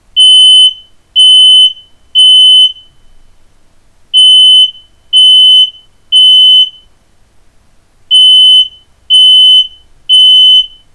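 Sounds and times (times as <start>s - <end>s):
IKEA smoke alarm: 0.2s - 3.0s, 4.2s - 6.9s, 8.1s - 10.9s.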